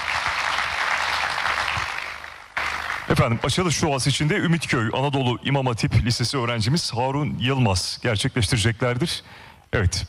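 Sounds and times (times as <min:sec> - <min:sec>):
audience applause welcoming officials onto a stage at an opening ceremony: 0:00.0 - 0:03.5
speech: 0:03.1 - 0:10.0.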